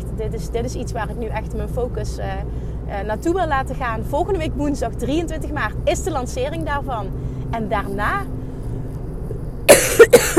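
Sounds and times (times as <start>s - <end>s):
speech: 0.2s - 8.3s
person coughing mid-sentence: 9.7s - 10.3s.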